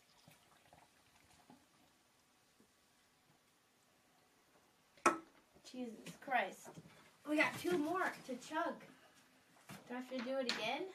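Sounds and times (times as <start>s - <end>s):
cherry limeade hard seltzer being poured, fizzing bubbles: 0.0s - 4.0s
speech: 5.7s - 9.0s, 9.9s - 10.9s.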